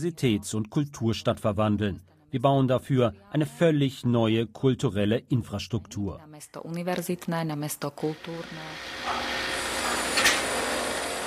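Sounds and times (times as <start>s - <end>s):
speech: 0.0s - 9.2s
construction-site grinding tool rasping: 8.2s - 11.2s.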